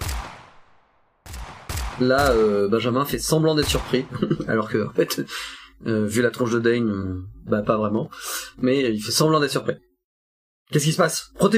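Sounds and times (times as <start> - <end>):
gunshots: 0.0 - 4.6
speech: 2.0 - 9.9, 10.7 - 11.5
laughter: 3.8 - 5.3.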